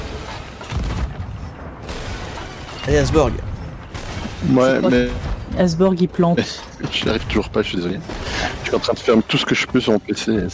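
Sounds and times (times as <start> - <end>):
deep booming video game cannon blast: 0.0 - 5.8, 6.9 - 9.1
speech: 2.9 - 3.5, 4.4 - 10.5.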